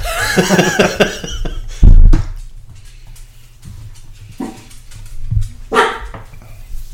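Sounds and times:
laughter: 0:00.0 - 0:01.8
room noise: 0:00.0 - 0:06.9
dog barking: 0:05.7 - 0:06.2.

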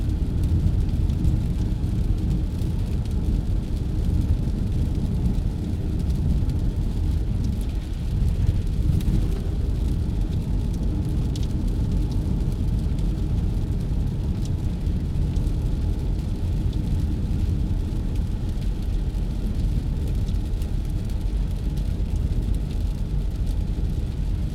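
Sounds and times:
rain drumming on a car roof: 0:00.0 - 0:24.5
low rumble of road hum: 0:01.2 - 0:19.8.

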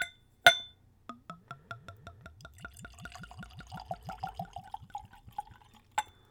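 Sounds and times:
sharp clink of glass: 0:00.0 - 0:00.8, 0:02.4 - 0:06.2
absinthe poured neat from a bottle into a Glencairn glass: 0:01.2 - 0:06.2.

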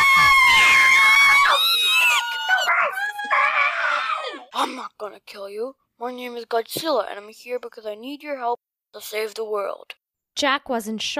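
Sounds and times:
crowd of people screaming: 0:00.0 - 0:04.5
speech: 0:05.2 - 0:11.1.

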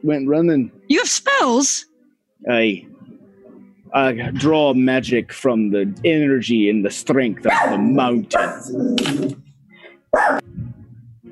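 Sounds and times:
speech: 0:00.0 - 0:03.0, 0:03.9 - 0:09.4, 0:10.1 - 0:10.6
dog barking: 0:07.5 - 0:08.8, 0:10.1 - 0:10.5.

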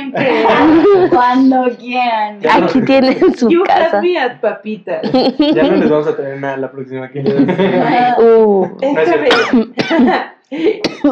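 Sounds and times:
laughter: 0:00.0 - 0:01.7, 0:02.4 - 0:03.6, 0:05.0 - 0:11.0
speech: 0:00.1 - 0:11.0
harsh coughs with raspy throat sounds: 0:05.0 - 0:06.4, 0:07.2 - 0:08.1, 0:09.0 - 0:10.2, 0:10.8 - 0:11.0.

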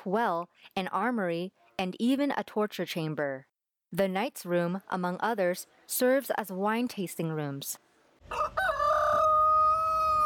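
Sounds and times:
speech: 0:00.0 - 0:08.6
rooster crowing loudly on a farm beside a castle: 0:08.2 - 0:10.2.

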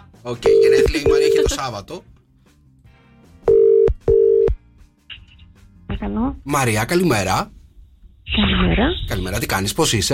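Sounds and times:
speech: 0:00.2 - 0:02.1, 0:06.0 - 0:07.6, 0:08.3 - 0:10.1
ringback tones on a phone line: 0:00.5 - 0:01.6, 0:03.5 - 0:04.6.

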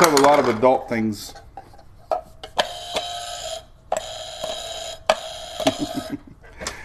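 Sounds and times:
speech: 0:00.0 - 0:01.4, 0:05.8 - 0:06.2
harsh loud electronic buzzer blaring: 0:02.6 - 0:06.1.

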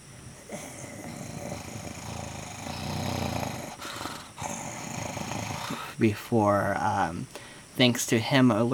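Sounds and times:
dog growling low: 0:00.4 - 0:05.9
speech: 0:06.0 - 0:08.7.

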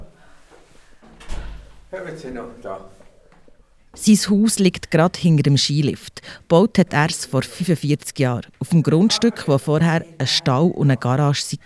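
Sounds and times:
door pushed shut with a loud low thud and rattle: 0:01.2 - 0:01.8
speech: 0:01.9 - 0:03.0, 0:04.0 - 0:11.6.

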